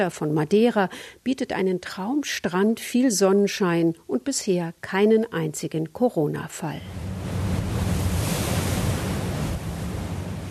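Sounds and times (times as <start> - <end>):
speech: 0.0 - 7.3
Atlantic ocean waves and surf around a moving ferry: 6.8 - 10.4
gusting wind buffeting the microphone on a ferry deck: 6.9 - 10.4.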